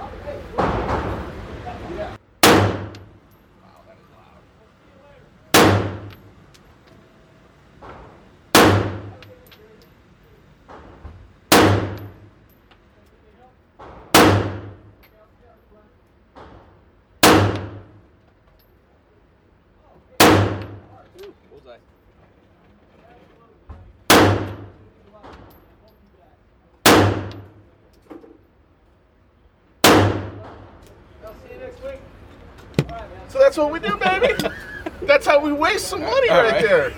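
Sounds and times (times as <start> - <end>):
Glock 17 pistol gunshots at a gun range: 2.4 - 3.2, 5.5 - 6.3, 8.5 - 9.2, 11.5 - 12.2, 14.1 - 14.9, 17.2 - 18.0, 20.2 - 21.0, 24.1 - 24.8, 26.8 - 27.6, 29.8 - 30.6
speech: 33.3 - 36.9
laughter: 33.6 - 36.9.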